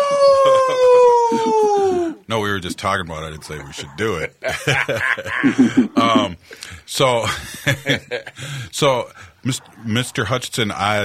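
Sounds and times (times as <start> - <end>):
person howling like a wolf: 0.0 - 2.2
laughter: 0.1 - 2.0, 4.0 - 6.4, 7.2 - 8.5
speech: 1.5 - 11.0
voices murmuring: 2.6 - 4.4, 9.4 - 11.0.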